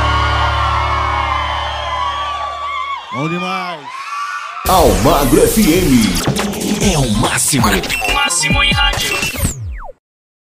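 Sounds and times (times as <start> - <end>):
crowd whooping and shouting: 0.0 - 6.3
speech: 4.7 - 9.5.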